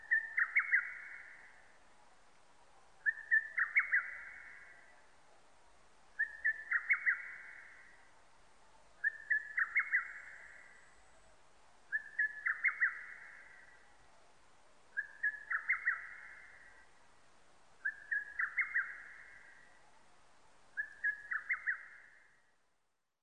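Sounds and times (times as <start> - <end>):
lesser cuckoo song of staccato whistled phrases: 0.0 - 1.4, 3.0 - 4.7, 6.2 - 7.8, 9.0 - 10.7, 11.9 - 13.7, 15.0 - 16.7, 17.8 - 19.6, 20.8 - 22.2.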